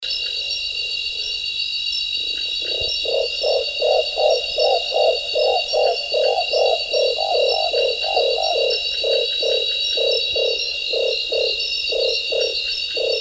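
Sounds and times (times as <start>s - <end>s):
Bismarck hawk owl: 2.7s - 13.1s.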